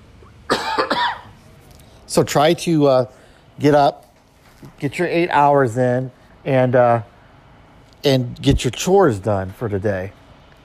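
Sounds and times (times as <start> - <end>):
harsh coughing: 0.2 - 1.4
speech: 2.1 - 4.0, 4.6 - 7.1, 8.0 - 10.2.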